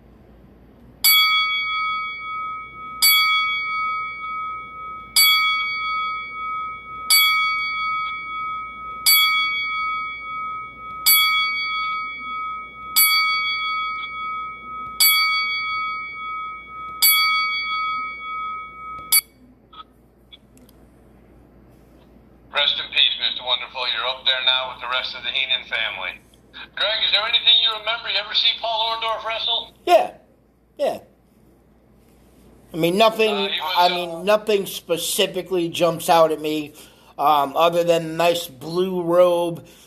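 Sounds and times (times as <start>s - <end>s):
single bell struck: 1.0s - 19.5s
speech: 23.7s - 30.2s, 30.8s - 31.0s, 32.8s - 39.8s.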